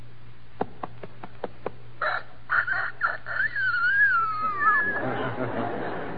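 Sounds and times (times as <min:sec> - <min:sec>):
low steady hum: 0:00.0 - 0:06.1
four-month-old young rooster crowing: 0:02.0 - 0:05.0
laughter: 0:04.1 - 0:06.1.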